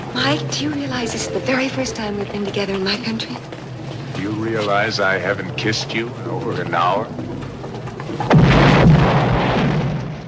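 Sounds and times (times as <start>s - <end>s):
speech: 0.2s - 3.6s, 4.2s - 7.3s
car explosion in a film: 8.2s - 10.2s.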